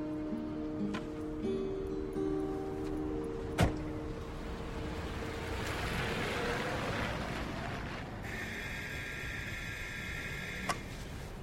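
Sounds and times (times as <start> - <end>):
road noise: 0.6 - 11.4
taxi cab engine rumble: 2.4 - 11.4.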